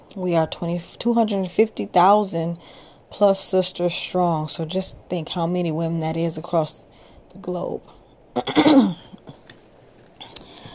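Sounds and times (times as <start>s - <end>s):
speech: 0.1s - 9.0s
person clearing throat during a talk: 8.4s - 9.2s.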